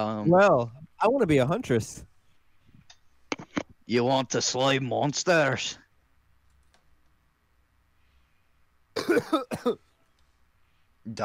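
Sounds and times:
speech: 0:00.0 - 0:02.1, 0:03.9 - 0:05.8, 0:09.0 - 0:09.9, 0:11.1 - 0:11.2
throaty coughs: 0:09.0 - 0:09.9.

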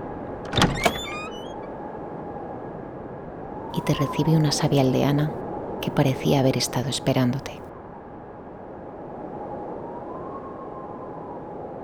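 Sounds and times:
door latch clunk: 0:00.4 - 0:01.5
door creaking: 0:00.4 - 0:01.7
speech: 0:03.8 - 0:07.6.

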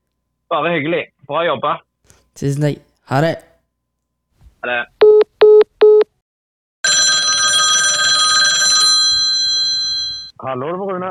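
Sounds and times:
speech: 0:00.5 - 0:03.5, 0:04.6 - 0:05.0, 0:10.4 - 0:11.1
phone call electronic ring tones: 0:06.8 - 0:10.3.

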